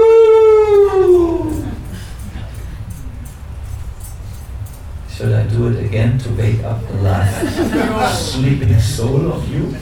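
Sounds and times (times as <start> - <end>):
person imitating animal howling heard in a temple at night: 0.0 - 1.9
speech: 6.2 - 9.7
laughter: 7.1 - 8.6.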